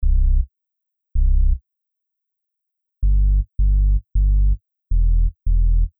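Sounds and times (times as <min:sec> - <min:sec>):
sub bass: 0:00.0 - 0:00.5, 0:01.2 - 0:01.6, 0:03.0 - 0:05.9.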